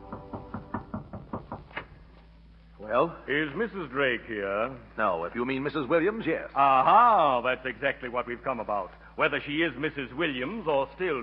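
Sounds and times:
knocks on a wooden hotel room door: 0.0 - 1.9
speech: 2.9 - 11.2.

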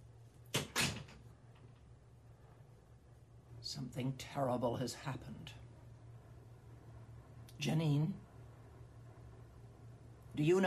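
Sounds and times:
door swinging shut with latch catching: 0.5 - 1.7
speech: 3.6 - 5.6, 7.6 - 8.2, 10.4 - 10.6.

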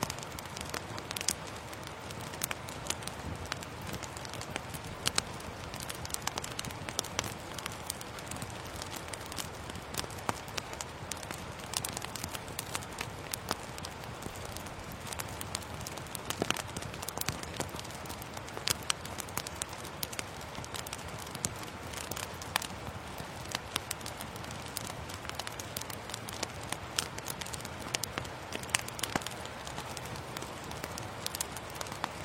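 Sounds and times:
rain pattering on leaves in an autumn forest: 0.0 - 32.2.

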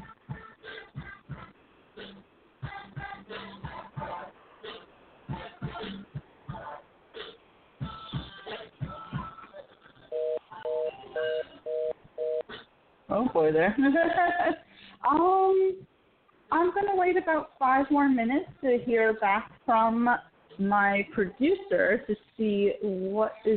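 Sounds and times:
telephone ringback tone while calling a guest: 10.1 - 12.5
speech: 13.2 - 15.8, 16.5 - 23.5.

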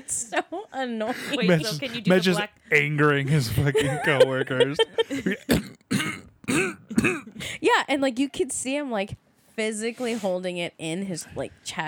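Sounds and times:
speech: 0.0 - 5.8, 6.6 - 11.8
laughter: 3.3 - 5.5
loud throat clearings mixed with coughs: 5.2 - 7.5.

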